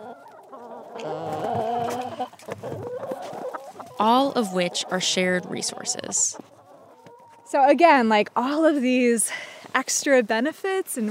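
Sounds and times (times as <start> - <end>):
chickens clucking on a shared community homestead: 0.0 - 8.3
speech: 4.0 - 6.5, 7.5 - 11.1.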